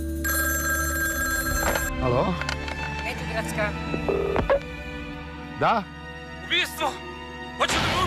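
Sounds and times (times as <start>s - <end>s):
telephone bell ringing: 0.2s - 2.0s
speech: 2.0s - 2.5s, 3.4s - 4.7s, 5.6s - 5.9s, 6.5s - 8.0s.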